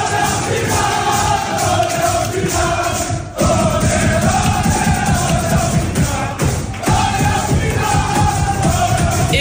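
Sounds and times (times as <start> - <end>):
football players shouting and cheering in a locker room: 0.0 - 9.3.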